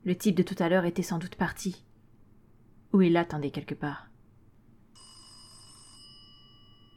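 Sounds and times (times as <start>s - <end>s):
speech: 0.0s - 1.9s, 2.9s - 4.1s
telephone ringing: 4.9s - 6.9s.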